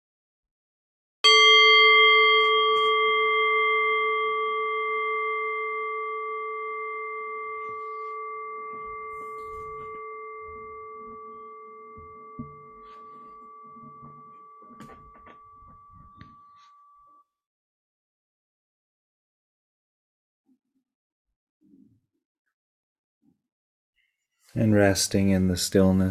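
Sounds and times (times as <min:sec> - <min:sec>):
meditation bell struck and ringing: 0:01.2 - 0:17.2
speech: 0:24.5 - 0:26.0.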